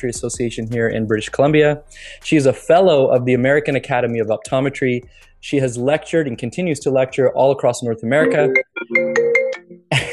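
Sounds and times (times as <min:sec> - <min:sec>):
speech: 0:00.0 - 0:09.2
mobile phone ringtone electronic melody: 0:08.2 - 0:09.9.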